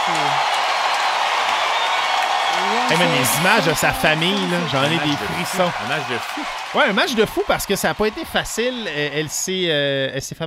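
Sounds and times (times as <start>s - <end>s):
large crowd cheering at a tennis match in Montréal: 0.0s - 10.1s
person whooping: 2.4s - 6.6s
laughter: 2.6s - 9.3s
speech: 2.9s - 10.4s.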